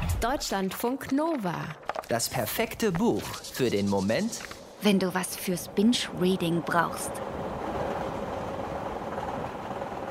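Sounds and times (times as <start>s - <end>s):
speech: 0.2s - 7.3s
moving train rumbling with mechanical clatter: 2.7s - 10.0s.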